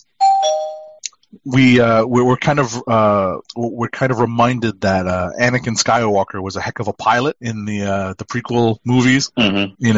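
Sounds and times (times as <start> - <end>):
bright bell chime: 0.2 - 1.0
speech: 1.4 - 9.9
loud animated voice: 1.5 - 9.9.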